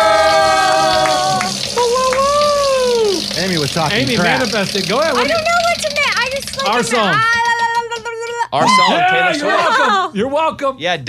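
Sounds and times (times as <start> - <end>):
prize wheel spinning and clicking: 0.0 - 8.6
speech: 3.8 - 5.6, 6.6 - 7.4, 8.5 - 11.0.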